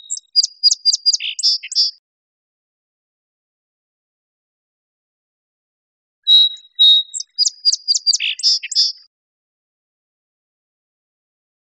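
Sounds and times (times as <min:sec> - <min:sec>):
song sparrow song with clear notes, chips and trills: 0:00.0 - 0:02.0, 0:06.3 - 0:09.1.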